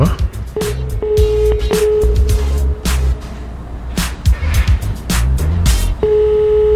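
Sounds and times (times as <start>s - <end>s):
busy rhythmic music: 0.0s - 6.7s
telephone ringback tone on an outgoing call: 0.6s - 2.4s, 6.0s - 6.7s.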